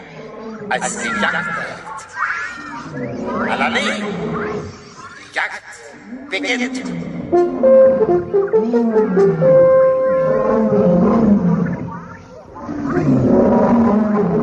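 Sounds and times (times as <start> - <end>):
lion roaring during a safari: 0.0 - 1.8, 2.7 - 5.1, 8.6 - 11.9, 12.6 - 14.4
speech: 0.7 - 2.2, 2.9 - 4.8, 5.4 - 11.6.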